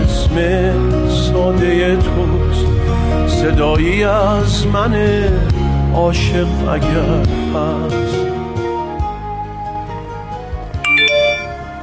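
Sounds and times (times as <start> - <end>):
steady tonal music: 0.0 - 11.8
speech: 0.4 - 0.7, 3.4 - 8.2
mobile phone message notification chime: 10.8 - 11.6.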